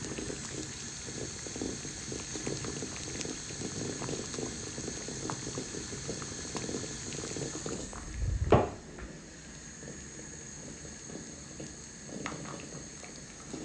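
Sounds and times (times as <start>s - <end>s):
water boiling in a pot: 0.0s - 13.6s.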